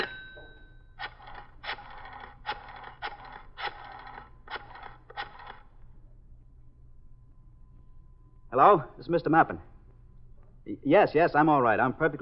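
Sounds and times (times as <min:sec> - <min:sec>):
telephone dial tone: 0:01.0 - 0:05.8
speech: 0:08.6 - 0:09.7, 0:10.7 - 0:12.2.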